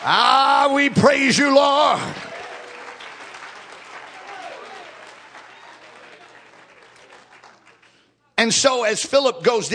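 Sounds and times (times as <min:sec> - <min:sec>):
speech: 0:00.0 - 0:02.3, 0:08.4 - 0:09.7
crowd clapping in praise: 0:00.0 - 0:08.2.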